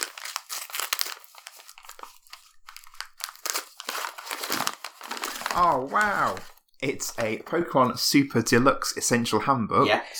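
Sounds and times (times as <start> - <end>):
wrapping paper being ripped and crumpled: 0.0 - 7.3
speech: 5.6 - 10.1.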